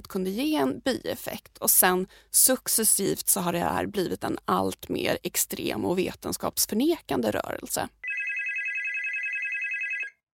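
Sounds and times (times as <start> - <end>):
speech: 0.1 - 8.1
telephone bell ringing with rapid trilling warble: 8.0 - 10.3.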